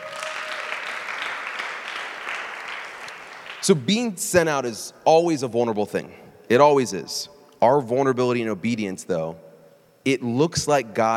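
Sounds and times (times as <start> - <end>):
crowd applauding: 0.0 - 3.8
speech: 3.6 - 11.1.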